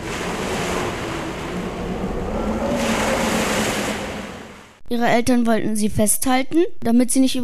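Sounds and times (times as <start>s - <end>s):
heavy wind roar in a strong storm: 0.0s - 4.8s
low rumbling undertone: 0.0s - 4.8s
stormy sea waves crashing against a rocking ship: 0.0s - 4.8s
speech: 4.9s - 7.4s.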